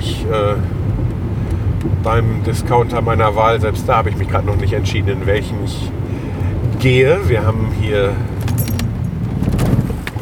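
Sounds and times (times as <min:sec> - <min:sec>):
car engine stalling at a red traffic light: 0:00.0 - 0:10.2
speech: 0:00.2 - 0:01.0, 0:01.8 - 0:06.0, 0:06.8 - 0:08.3
light rattling and clinking: 0:08.2 - 0:10.2.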